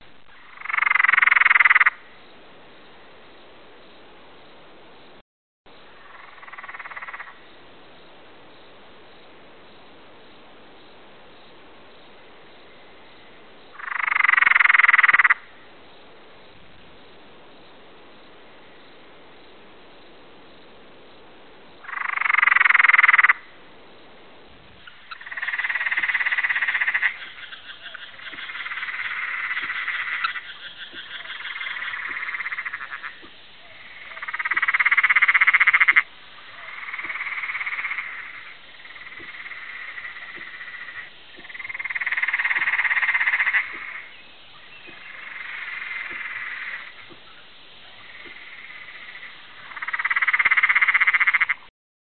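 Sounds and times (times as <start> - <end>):
frog calling: 0.2 - 2.2, 5.9 - 7.6, 12.6 - 15.7, 21.8 - 23.6, 24.8 - 51.7.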